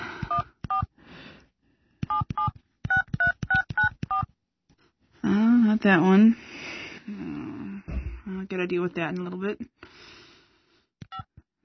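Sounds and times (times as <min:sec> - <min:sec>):
cell phone keypad dialing tones: 0:00.3 - 0:00.9, 0:02.0 - 0:04.3
speech: 0:05.8 - 0:06.5, 0:08.6 - 0:09.8.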